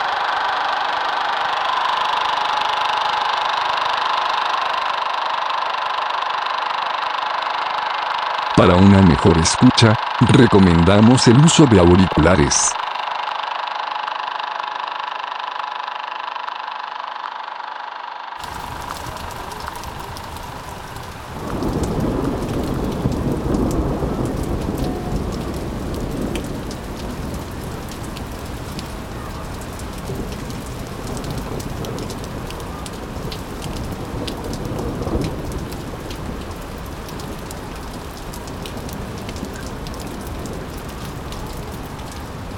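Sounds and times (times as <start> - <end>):
heavy rain: 0.0 - 13.0, 18.4 - 42.5
speech: 8.6 - 12.8
deep rolling thunder rumble: 18.4 - 42.5.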